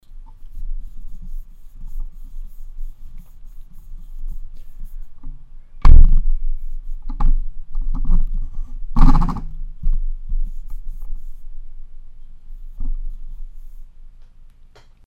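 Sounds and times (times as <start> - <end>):
Rode NT USB microphone handling noise: 4.4 - 11.2.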